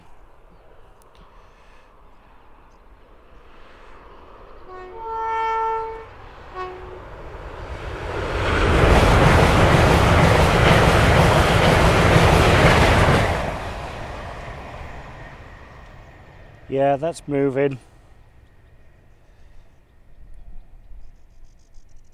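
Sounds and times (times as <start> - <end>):
high-speed train rushing past: 2.5 - 19.3
high-speed train horn: 4.6 - 7.2
speech: 16.8 - 17.9.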